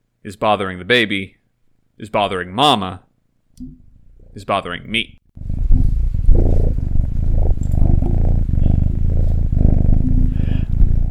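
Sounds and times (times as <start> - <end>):
speech: 0.2 - 1.4, 2.0 - 3.8, 4.4 - 5.5
faint rustling: 5.4 - 11.1
male kitten purring: 5.4 - 11.1.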